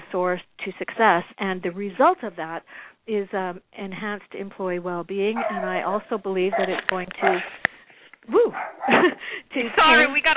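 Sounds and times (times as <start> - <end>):
speech: 0.1 - 7.6, 8.2 - 10.3
small dog barking at neighborhood dogs: 6.5 - 7.5.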